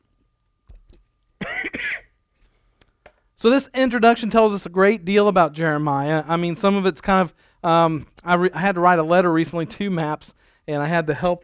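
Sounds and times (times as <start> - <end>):
person clearing throat: 1.4 - 2.1
person coughing harshly: 1.4 - 2.2
speech: 3.4 - 11.4.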